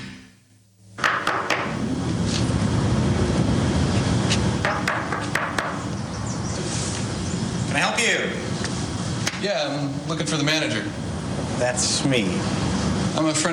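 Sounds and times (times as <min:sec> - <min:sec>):
loud noise: 0:00.0 - 0:13.5
knocking on an apartment door: 0:04.6 - 0:05.8
speech: 0:09.4 - 0:11.0, 0:11.6 - 0:12.6, 0:13.2 - 0:13.5.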